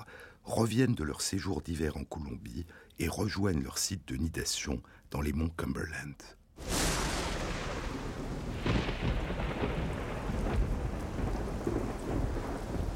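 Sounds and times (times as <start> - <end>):
speech: 0.4 - 6.8
deep thunder rumbling and cracking in a supercell thunderstorm: 6.6 - 12.9
heavy rain in a supercell thunderstorm: 6.6 - 12.9.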